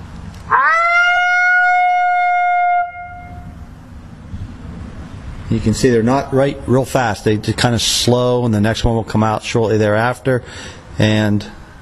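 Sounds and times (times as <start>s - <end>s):
voice imitating a female wolf's lonesome howl: 0.5s - 3.3s
speech: 5.6s - 11.6s.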